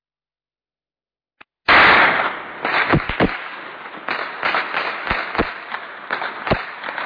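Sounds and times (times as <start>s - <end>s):
loud blast: 1.7s - 5.5s
heavy gunfire cracks and bangs: 1.7s - 7.0s.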